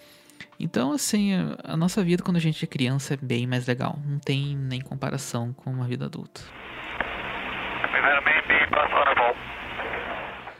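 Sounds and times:
speech: 0.6 - 6.6
television film audio with tinny voices: 6.5 - 10.5.

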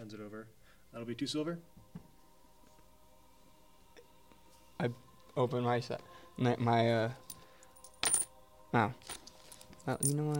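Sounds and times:
speech: 0.1 - 2.0, 4.8 - 7.2, 8.7 - 9.2, 9.8 - 10.3
quarters clattering onto a hard tabletop: 7.3 - 8.3, 9.0 - 10.3.

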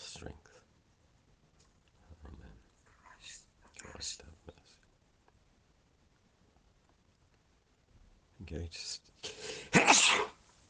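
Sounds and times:
speech: 8.5 - 9.1
person sneezing: 9.3 - 10.4.

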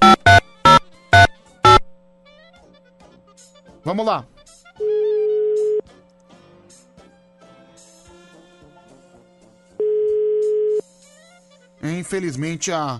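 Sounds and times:
faint music: 0.0 - 12.9
speech: 3.9 - 4.4, 11.8 - 12.9
telephone ringback tone while a call is placed: 4.8 - 5.8, 9.8 - 10.8.

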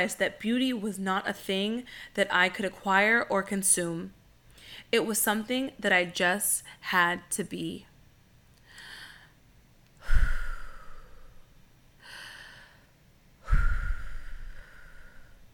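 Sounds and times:
speech: 0.0 - 7.9
deep breaths taken in and out during a guided breathing moment: 1.8 - 2.2, 4.5 - 5.0, 8.6 - 15.5.

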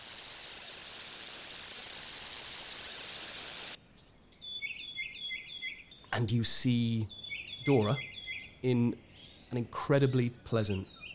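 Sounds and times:
loud dense static hiss: 0.0 - 3.8
soft bird chirps: 4.0 - 6.2, 6.8 - 11.1
speech: 6.2 - 11.0.

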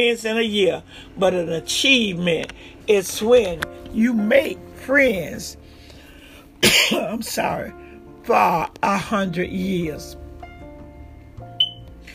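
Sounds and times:
speech: 0.0 - 5.6, 6.6 - 10.2
man coughing: 6.6 - 7.2.

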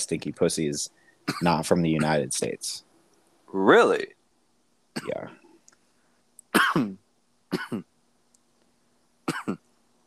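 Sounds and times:
speech: 0.0 - 2.9, 3.5 - 4.2, 5.0 - 5.4, 6.8 - 7.9, 9.3 - 9.6
person coughing: 1.3 - 2.2, 5.0 - 5.2, 6.6 - 7.8, 9.3 - 9.6.

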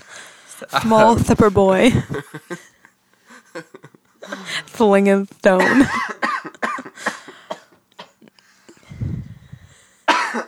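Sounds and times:
speech: 0.6 - 2.7, 3.6 - 6.2
harsh coughing and rough hacking: 5.6 - 8.3, 10.1 - 10.4.

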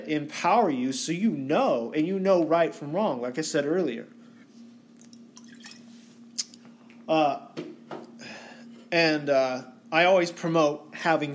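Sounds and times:
speech: 0.1 - 4.2, 7.1 - 7.7, 8.9 - 11.3
water dripping: 5.0 - 5.8.

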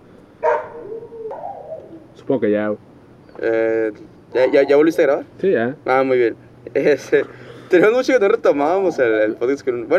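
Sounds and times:
dog barking: 0.4 - 1.8
speech: 2.3 - 9.9.

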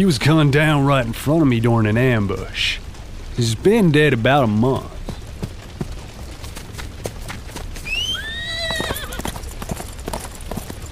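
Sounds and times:
speech: 0.0 - 2.8, 3.4 - 5.0
horse hooves clip-clopping: 4.4 - 10.9
horse whinnying: 7.8 - 9.3.

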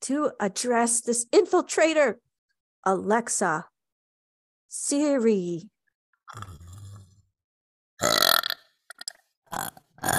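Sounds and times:
speech: 0.1 - 3.7, 4.7 - 5.7, 6.3 - 6.6, 9.6 - 10.1
person burping: 6.3 - 7.2, 8.0 - 10.1.

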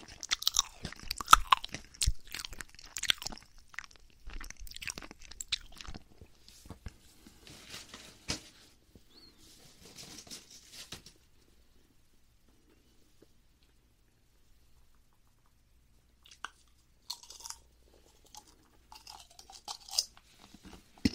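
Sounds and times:
crispy snack being crunched: 0.0 - 6.0, 16.2 - 17.7.

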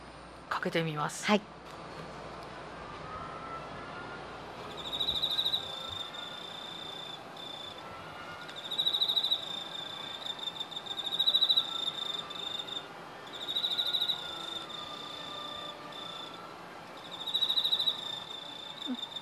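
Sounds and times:
faint hiss: 0.0 - 19.2
speech: 0.5 - 1.6
lone cricket singing its calling song: 4.6 - 19.2.

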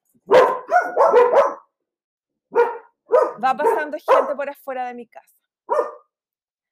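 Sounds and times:
dogs barking: 0.2 - 1.7, 2.5 - 4.4, 5.7 - 6.1
speech: 3.4 - 5.9.

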